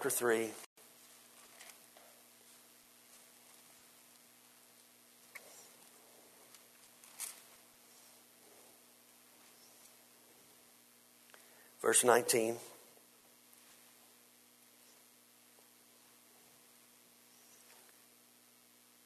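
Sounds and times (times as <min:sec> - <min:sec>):
speech: 0:00.0 - 0:00.7, 0:11.9 - 0:12.7
faint steady hum: 0:00.0 - 0:19.0
many Bible pages turning: 0:01.3 - 0:01.9, 0:06.5 - 0:07.6.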